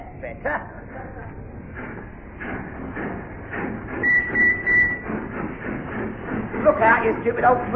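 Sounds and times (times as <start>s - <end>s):
dockyard train rumbling and chugging: 0.5s - 7.7s
dockyard train whistle toots: 4.0s - 5.1s
speech: 7.3s - 7.7s.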